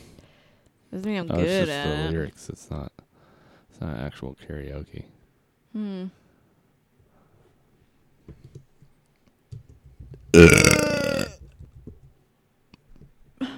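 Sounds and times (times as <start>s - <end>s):
speech: 0.9s - 3.0s, 3.8s - 6.2s, 10.3s - 11.0s
loud burp: 10.3s - 11.5s
short vocal sound: 10.4s - 11.4s.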